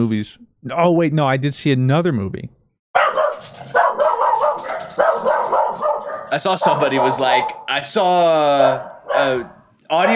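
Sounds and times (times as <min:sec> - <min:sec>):
speech: 0:00.0 - 0:04.0, 0:06.3 - 0:10.1
dogs barking excitedly: 0:03.0 - 0:07.8, 0:08.5 - 0:09.7.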